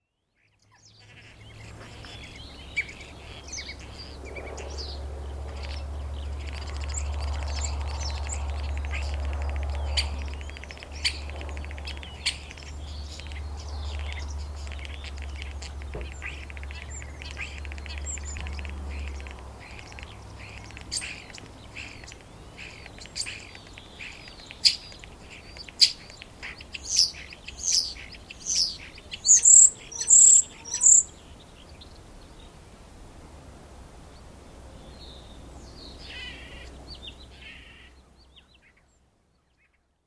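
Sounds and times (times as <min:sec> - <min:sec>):
starling singing: 0:01.0 - 0:31.4.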